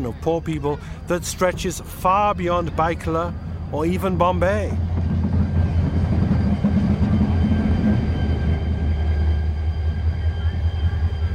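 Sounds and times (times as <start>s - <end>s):
speech: 0.0s - 4.9s
heavy goods train rumbling along the track: 0.0s - 11.3s
faint metallic whines and squeals: 2.8s - 11.3s.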